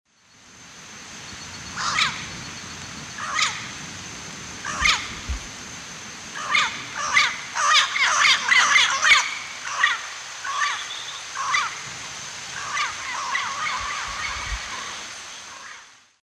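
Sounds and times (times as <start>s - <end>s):
Amazona ochrocephala flight calls in eastern lowlands of South America: 1.7s - 2.4s, 3.2s - 3.8s, 4.6s - 5.4s, 6.4s - 11.9s, 12.5s - 15.9s.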